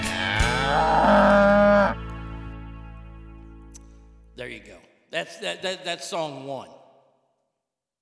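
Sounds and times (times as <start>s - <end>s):
cow mooing: 0.2s - 2.0s
speech: 5.4s - 6.8s.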